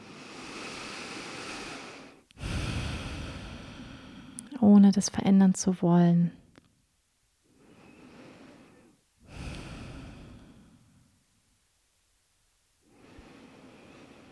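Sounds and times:
slow deep breathing in and out: 0.0 - 4.5, 7.5 - 11.2, 12.8 - 14.3
speech: 4.7 - 6.4.

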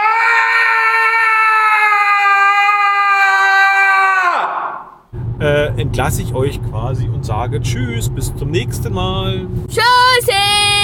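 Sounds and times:
child screaming in a long high-pitched wail: 0.0 - 4.9
speech: 5.8 - 10.8.

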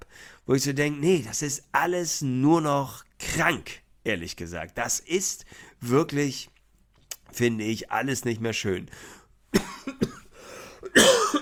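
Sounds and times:
speech: 0.5 - 6.5, 7.3 - 9.2
person coughing: 9.5 - 11.3.

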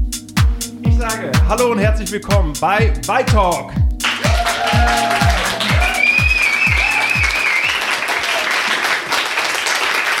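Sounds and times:
low rhythmic thumps: 0.0 - 7.4
speech: 1.1 - 3.8
live audience applauding: 4.0 - 10.1
faint whistle: 5.9 - 8.0.

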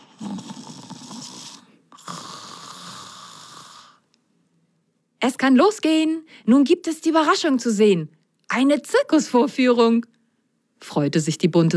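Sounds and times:
soft raspy snoring: 0.0 - 4.1
speech: 5.2 - 10.2, 10.8 - 11.7.

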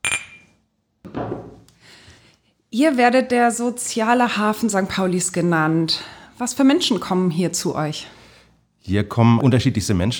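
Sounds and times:
glasses clinking in a toast in a café: 0.0 - 0.6
speech: 2.7 - 8.2, 8.8 - 10.1.

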